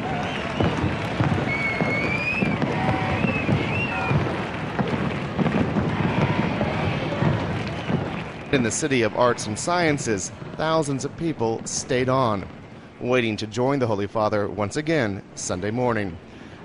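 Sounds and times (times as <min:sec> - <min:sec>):
fireworks crackling and popping overhead: 0:00.0 - 0:16.6
noisy outdoor crowd in Valencia, Spain: 0:00.0 - 0:16.6
high whistling tones of fireworks: 0:00.1 - 0:04.2
speech: 0:08.6 - 0:16.3.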